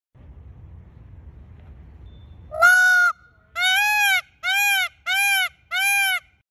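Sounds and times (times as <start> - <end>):
Afropavo peacock calling: 2.3 - 6.4.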